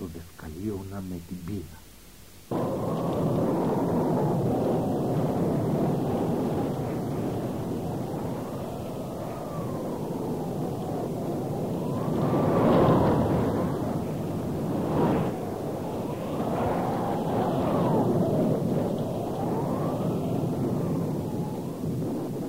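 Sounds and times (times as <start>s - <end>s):
speech: 0.6s - 1.8s
steady heavy roar of rain: 2.4s - 22.4s
deep rumbling thunder: 2.5s - 22.4s.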